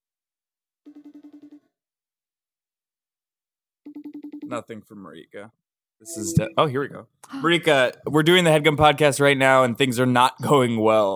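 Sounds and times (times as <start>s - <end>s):
phone call ringing tone: 0.9s - 1.7s, 3.9s - 4.5s
speech: 4.5s - 11.1s.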